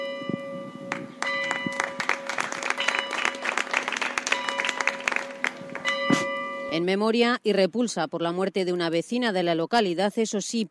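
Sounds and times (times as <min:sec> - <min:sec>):
town square clock bells ringing in sustained tones: 0:00.0 - 0:03.5, 0:04.3 - 0:07.0
outdoor crowd applauding in a town square: 0:00.9 - 0:06.0
speech: 0:06.8 - 0:10.6.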